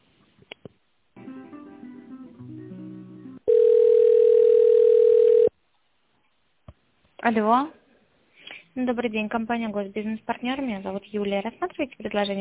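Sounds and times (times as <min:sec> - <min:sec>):
steady telephone ringing tone during a call transfer: 0:03.5 - 0:05.5
speech: 0:07.3 - 0:07.8, 0:08.8 - 0:12.3.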